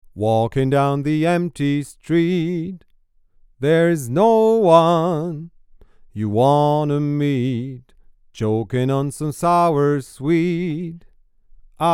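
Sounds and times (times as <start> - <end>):
male vocal: 0.2 - 2.9, 3.6 - 11.2, 11.8 - 11.9.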